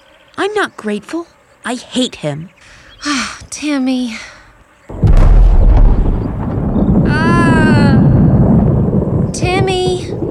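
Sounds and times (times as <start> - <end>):
speech: 0.4 - 4.3
sonic boom from an airplane breaking the sound barrier: 4.9 - 8.9.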